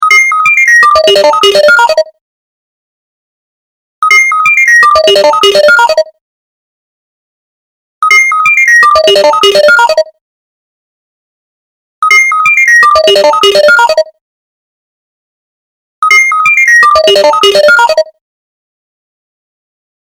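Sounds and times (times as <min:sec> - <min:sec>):
alien alert ringtone: 0:00.0 - 0:02.2, 0:04.0 - 0:06.2, 0:08.0 - 0:10.2, 0:12.0 - 0:14.2, 0:16.0 - 0:18.2.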